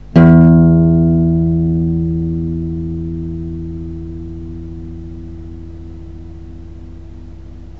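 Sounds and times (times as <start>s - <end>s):
guitar playing low E note: 0.0s - 7.7s.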